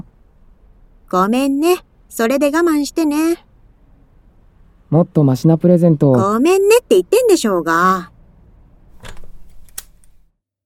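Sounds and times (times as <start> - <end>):
speech: 1.1 - 3.5, 4.9 - 8.1
small metallic latch clicking and rattling on a glass door: 9.0 - 9.9.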